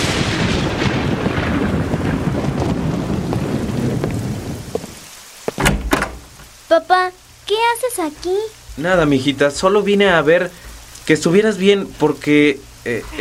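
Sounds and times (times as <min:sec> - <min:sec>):
deep rolling thunder: 0:00.0 - 0:06.4
heavy rain: 0:00.0 - 0:13.1
speech: 0:06.8 - 0:13.1.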